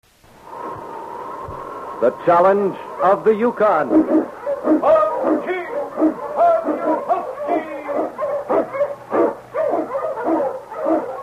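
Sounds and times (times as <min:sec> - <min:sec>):
speech: 0:02.0 - 0:06.9
pack of sled dogs barking and yelping: 0:03.0 - 0:11.2.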